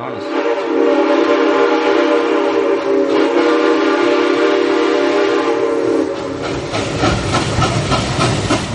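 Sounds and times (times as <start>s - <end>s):
passing train rumble and clatter: 0.0s - 8.7s
train whistle: 0.2s - 6.4s.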